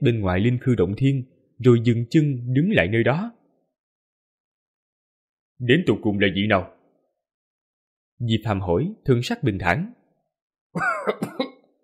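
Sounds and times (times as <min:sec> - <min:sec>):
speech: 0:00.0 - 0:03.4, 0:05.6 - 0:06.8, 0:08.2 - 0:10.0, 0:10.8 - 0:11.3
thin gaunt old man coughing violently: 0:10.8 - 0:11.6.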